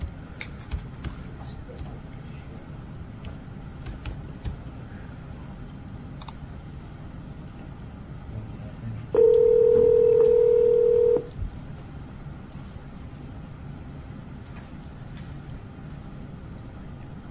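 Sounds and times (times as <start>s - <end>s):
low hum: 0.0s - 17.2s
faint clicks and beeps of a phone being dialed: 9.2s - 11.3s.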